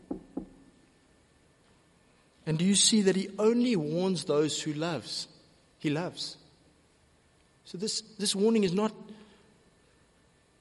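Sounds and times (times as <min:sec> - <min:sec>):
quick knocks on wood: 0:00.0 - 0:00.6
speech: 0:02.5 - 0:06.4, 0:07.7 - 0:09.0.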